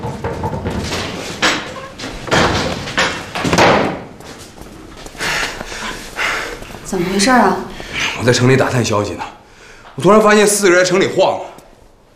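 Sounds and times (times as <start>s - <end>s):
door slamming shut: 0.3s - 4.2s
breathy snorting: 5.0s - 8.3s
speech: 6.9s - 9.4s, 10.0s - 11.6s.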